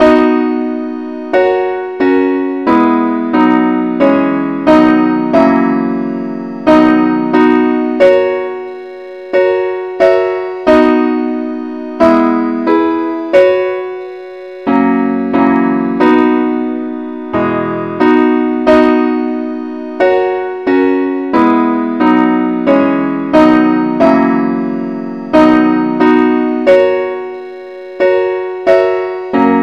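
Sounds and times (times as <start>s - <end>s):
accompaniment keyboard music: 0.0s - 29.6s.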